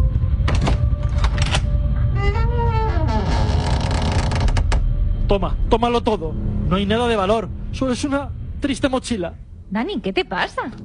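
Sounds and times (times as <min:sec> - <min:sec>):
steady low rumble: 0:00.0 - 0:10.8
door creaking open with squealing hinges: 0:02.2 - 0:04.9
speech: 0:05.3 - 0:10.8.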